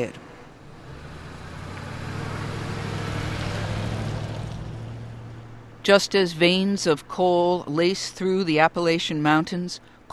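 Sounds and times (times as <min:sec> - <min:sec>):
speech: 0:00.0 - 0:00.2, 0:05.8 - 0:10.1
vehicle engine rumbling at a coal mine on a cold damp night: 0:00.0 - 0:07.9
road noise of vehicle traffic at a coal mine: 0:00.0 - 0:10.1.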